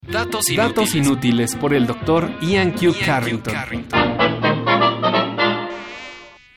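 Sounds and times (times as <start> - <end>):
speech: 0.1 - 4.4
mosquito buzzing: 4.6 - 6.5.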